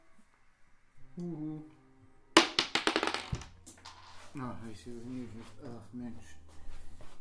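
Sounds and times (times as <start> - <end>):
speech: 1.2 - 1.8, 4.4 - 6.4
die clattering across a hard table surface: 2.4 - 4.1.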